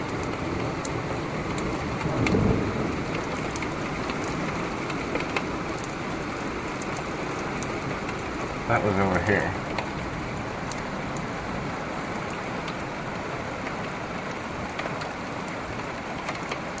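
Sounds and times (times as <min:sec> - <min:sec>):
heavy rain in a severe rainstorm: 0:00.0 - 0:16.7
sharp drip and patter clicks: 0:00.2 - 0:10.0, 0:10.6 - 0:11.4, 0:12.1 - 0:12.9, 0:13.5 - 0:16.7
low rumble of thunder in a severe rainstorm: 0:01.7 - 0:05.1
speech: 0:08.7 - 0:09.6.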